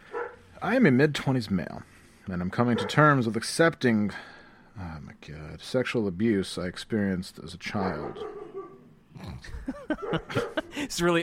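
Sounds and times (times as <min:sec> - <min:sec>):
dogs barking: 0:00.0 - 0:00.5, 0:02.6 - 0:03.2, 0:07.7 - 0:08.9, 0:09.8 - 0:10.8
speech: 0:00.6 - 0:08.4, 0:09.2 - 0:11.2
laughter: 0:09.3 - 0:11.1.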